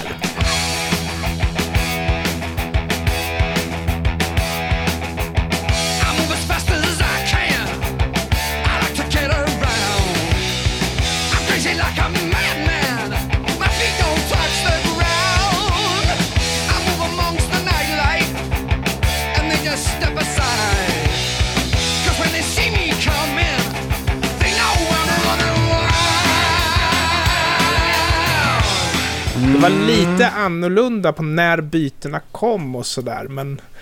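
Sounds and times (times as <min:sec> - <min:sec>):
1978 hard rock song recording with dense guitars and steady drums: 0:00.0 - 0:30.4
speech: 0:30.4 - 0:33.8.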